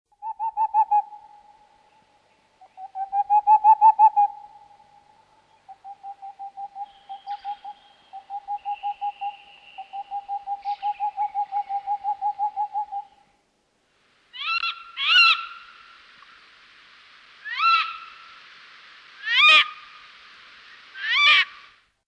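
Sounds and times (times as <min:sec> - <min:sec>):
boreal owl calling: 0:00.2 - 0:02.0, 0:02.6 - 0:13.3, 0:14.3 - 0:16.0, 0:17.4 - 0:18.4, 0:19.2 - 0:20.1, 0:20.7 - 0:21.8.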